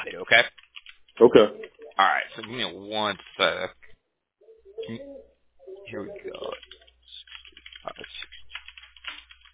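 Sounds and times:
keyboard typing a text message: 0.1 - 3.8, 5.6 - 9.5
speech: 0.3 - 0.6, 1.2 - 3.8, 4.9 - 5.2, 5.9 - 6.6.

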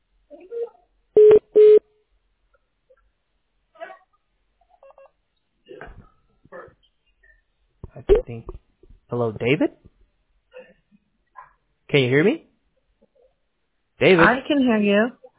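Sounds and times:
touch-tone dialing on a telephone: 1.2 - 1.8
speech: 8.1 - 9.8, 11.9 - 12.5, 14.0 - 15.2.

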